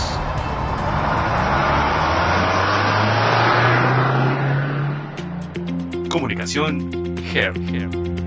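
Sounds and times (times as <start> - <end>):
car engine starting and revving: 0.0 - 6.0
speech: 6.2 - 8.1.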